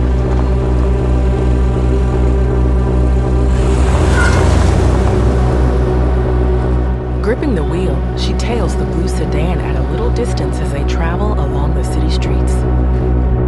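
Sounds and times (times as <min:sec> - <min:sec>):
white convertible engine rumble reversing out of a parking space: 0:00.0 - 0:13.4.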